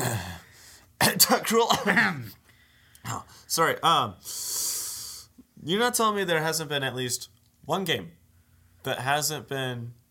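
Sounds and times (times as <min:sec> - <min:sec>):
person coughing: 0:00.0 - 0:00.4, 0:01.0 - 0:02.4
hiss: 0:00.0 - 0:10.0
speech: 0:01.5 - 0:02.4, 0:03.0 - 0:04.6, 0:05.6 - 0:08.2, 0:08.8 - 0:10.0.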